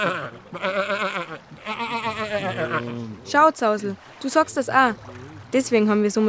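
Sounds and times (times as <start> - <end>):
speech: 0.0 - 1.0, 2.8 - 6.2
sheep bleating: 0.0 - 3.2.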